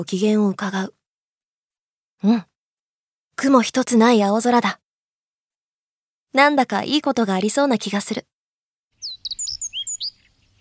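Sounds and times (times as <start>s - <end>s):
speech: 0.0s - 1.0s, 2.2s - 2.5s, 3.4s - 4.8s, 6.3s - 8.3s
birds chirping and singing: 9.0s - 10.5s.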